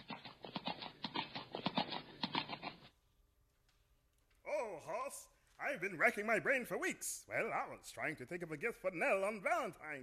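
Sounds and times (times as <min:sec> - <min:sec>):
horse hooves clip-clopping: 0:00.0 - 0:02.9
speech: 0:04.8 - 0:10.0.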